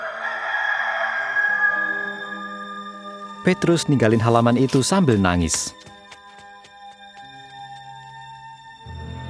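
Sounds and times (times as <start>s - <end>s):
rooster crowing: 0.0s - 2.5s
speech: 3.4s - 5.9s.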